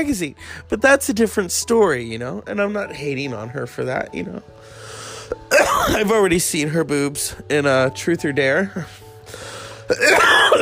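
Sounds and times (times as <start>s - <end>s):
speech: 0.0s - 4.8s, 5.5s - 10.6s
person coughing: 5.4s - 6.1s, 9.9s - 10.6s.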